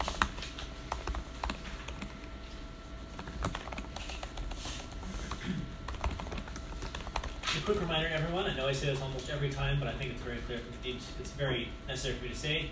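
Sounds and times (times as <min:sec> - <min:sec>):
typing on a computer keyboard: 0:00.0 - 0:02.3, 0:03.2 - 0:04.6, 0:05.3 - 0:07.6
low hum: 0:00.0 - 0:12.7
speech: 0:07.7 - 0:12.7.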